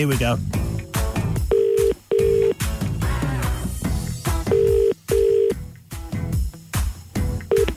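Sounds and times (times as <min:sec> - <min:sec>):
busy music: 0:00.0 - 0:07.7
electronic keypad beeps from a phone being dialed: 0:01.5 - 0:02.6, 0:04.5 - 0:05.5, 0:07.5 - 0:07.7.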